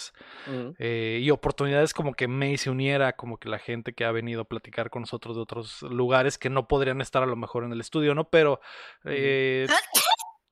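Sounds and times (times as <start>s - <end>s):
speech: 0.1s - 10.0s
person sneezing: 9.7s - 10.4s.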